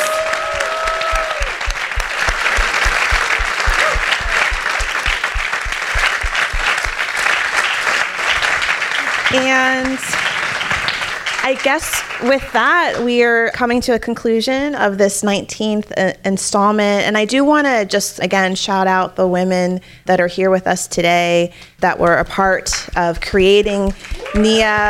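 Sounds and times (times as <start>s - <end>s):
whistle or cheer from audience: 0.0s - 1.8s
audience applauding: 0.0s - 12.6s, 23.9s - 24.8s
speech: 11.5s - 24.8s.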